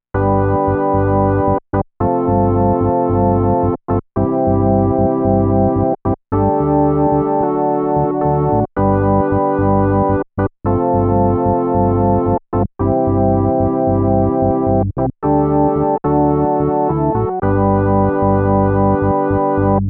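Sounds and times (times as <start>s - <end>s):
organ: 0.2s - 19.8s.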